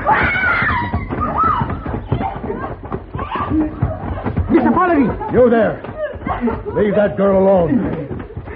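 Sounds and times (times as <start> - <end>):
woman screaming: 0.0 - 4.1
laughter: 0.8 - 8.5
speech: 5.4 - 8.0.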